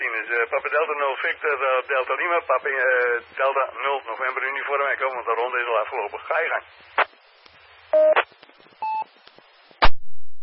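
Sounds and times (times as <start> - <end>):
faint static ticks on a two-way amateur radio link: 0.1 - 9.8
speech: 0.2 - 7.3
short electronic beep tones over a two-way amateur radio link: 8.0 - 8.2.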